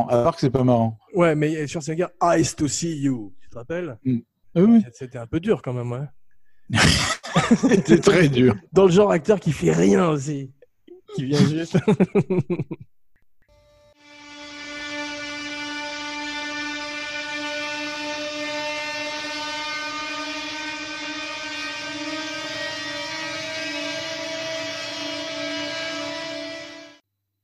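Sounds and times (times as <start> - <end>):
speech: 0.0 - 13.0
laughter: 6.7 - 8.7, 11.1 - 12.9
loud droning tone with buzzing harmonics: 13.5 - 27.0.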